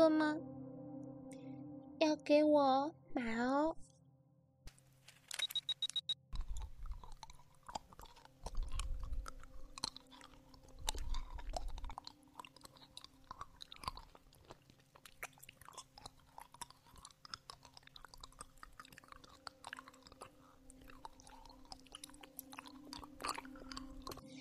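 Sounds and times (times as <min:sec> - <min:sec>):
speech: 0:02.0 - 0:03.9
chewing and mouth sounds of someone eating a lollipop: 0:05.3 - 0:24.4.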